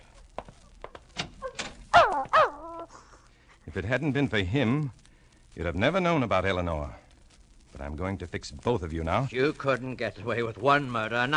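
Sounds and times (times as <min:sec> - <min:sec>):
dog's loud whiny yelping barks trailing into a high whine: 0:01.4 - 0:02.9
speech: 0:03.7 - 0:05.0, 0:05.6 - 0:07.0, 0:07.8 - 0:11.3.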